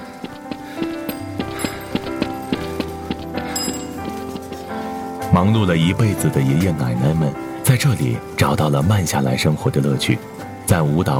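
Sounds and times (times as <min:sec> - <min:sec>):
joggers' rhythmic running footsteps: 0:00.0 - 0:06.8
sustained tonal music: 0:01.0 - 0:06.5
speech: 0:05.4 - 0:11.1.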